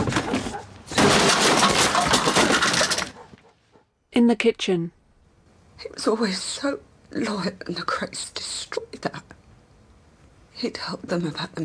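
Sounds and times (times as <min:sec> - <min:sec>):
garden chair being smashed: 0:00.0 - 0:03.3
speech: 0:04.2 - 0:05.0, 0:05.8 - 0:09.4, 0:10.6 - 0:11.6.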